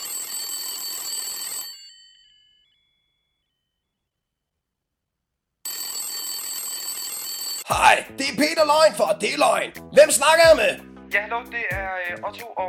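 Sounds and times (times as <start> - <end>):
old-fashioned telephone bell ringing as a caller phones in to a quiz: 0.0 - 3.6, 5.7 - 7.8
speech: 7.7 - 12.6.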